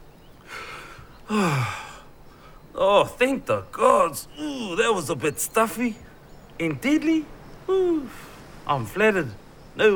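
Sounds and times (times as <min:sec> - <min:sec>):
deep gasping inhale ending in a voiced sigh: 0:00.4 - 0:02.6
speech: 0:01.3 - 0:01.8, 0:02.8 - 0:09.9.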